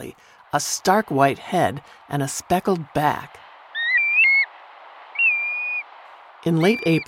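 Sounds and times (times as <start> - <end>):
speech: 0.0 - 3.4, 6.4 - 7.0
black-bellied plover whistled calls: 3.7 - 4.5, 5.1 - 5.9, 6.5 - 7.0.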